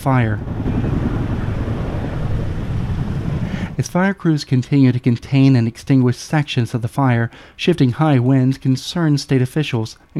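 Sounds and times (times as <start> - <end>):
speech: 0.0 - 1.0, 3.8 - 10.1
Army helicopters flying overhead fighting a wildfire in a state park: 0.0 - 3.8.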